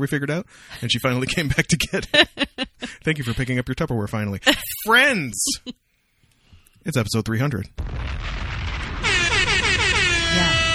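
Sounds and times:
speech: 0.0 - 5.8, 6.8 - 8.5
laughter: 0.8 - 3.6, 4.5 - 5.8
air horn blast: 9.0 - 10.7.

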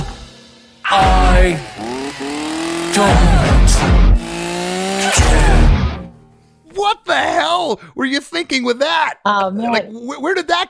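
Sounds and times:
chainsaw revving within a song: 0.0 - 6.1
speech: 3.0 - 4.0, 7.6 - 10.6.

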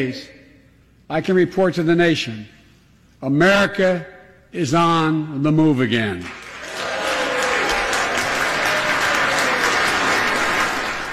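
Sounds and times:
speech: 0.0 - 0.4, 1.1 - 2.6, 3.2 - 6.4
lawmakers applauding in a chamber: 6.2 - 11.1.

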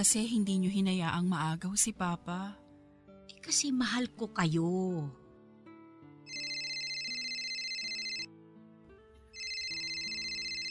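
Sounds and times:
speech: 0.0 - 2.6, 3.4 - 5.2
telephone ringtone playing a melodic electronic tune: 6.3 - 8.3, 9.4 - 10.6.

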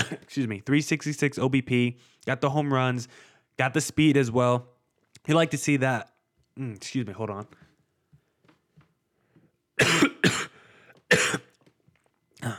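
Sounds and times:
loud coughs: 0.0 - 0.3, 9.8 - 11.6, 12.4 - 12.5
speech: 0.3 - 7.6.

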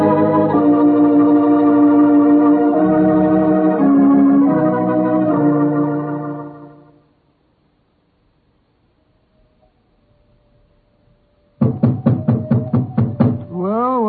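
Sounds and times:
tonal musical-sounding hum: 0.0 - 7.1
knocking on a wooden door: 11.6 - 13.5.

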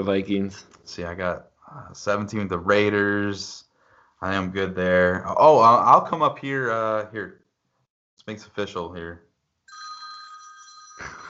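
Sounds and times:
speech: 0.0 - 7.4, 8.2 - 9.2
telephone ringing with electronic tone: 9.7 - 11.2.

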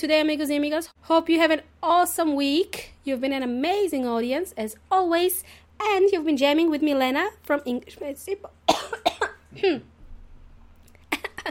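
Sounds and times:
speech: 0.0 - 9.9
person coughing: 8.7 - 9.9, 11.1 - 11.4.

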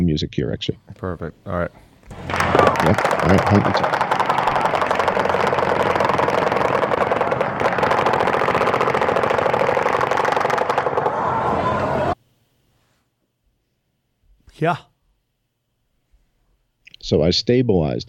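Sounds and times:
speech: 0.2 - 4.0, 14.6 - 14.9, 17.1 - 18.0
loud sustained automatic gunfire: 2.1 - 11.3.

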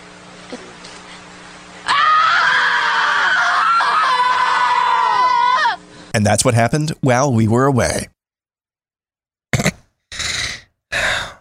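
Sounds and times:
speech: 0.5 - 0.7, 6.2 - 8.2
person letting out a loud sustained high-pitched scream: 1.8 - 5.8.

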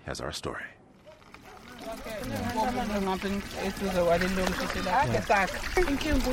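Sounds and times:
speech: 0.0 - 0.8, 1.8 - 6.3
water pouring from a standpipe into plastic containers: 1.1 - 6.3
several voices chattering: 1.4 - 6.3.

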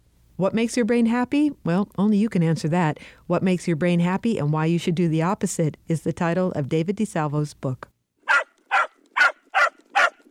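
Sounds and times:
speech: 0.4 - 7.9
dog barking: 8.3 - 10.2.

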